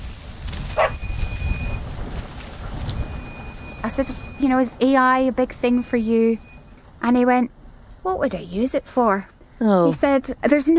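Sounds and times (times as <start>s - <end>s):
steady low rumble of engine or wind noise outdoors: 0.0s - 10.7s
dog giving a short sharp bark outdoors: 0.7s - 1.0s
speech: 3.8s - 10.7s.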